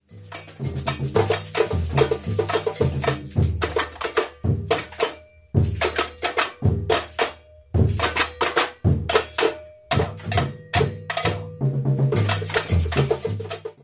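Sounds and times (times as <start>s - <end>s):
samba reggae break rhythms: 0.0s - 13.8s.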